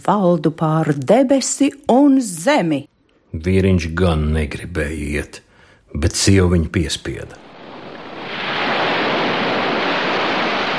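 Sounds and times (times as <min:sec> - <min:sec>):
speech: 0:00.0 - 0:07.4
roaring storm-driven sea waves crashing: 0:07.4 - 0:10.7.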